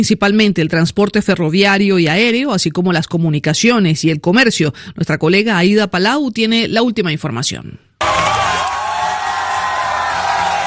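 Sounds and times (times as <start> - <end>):
speech: 0.0 - 8.4
large crowd in central Madrid cheering as electricity returns after a blackout: 8.0 - 10.6.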